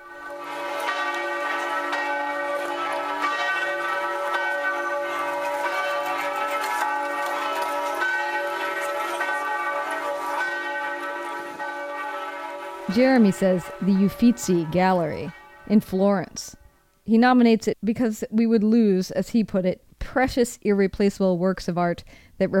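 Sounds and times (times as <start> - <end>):
large church bells of St. Mark's in Venice pealing: 0.0 - 16.4
speech: 12.9 - 22.5.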